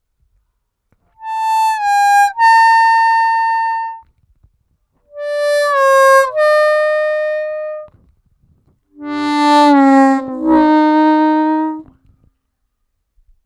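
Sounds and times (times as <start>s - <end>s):
harmonica overbends: 1.2s - 4.0s, 5.1s - 7.9s, 9.0s - 11.9s.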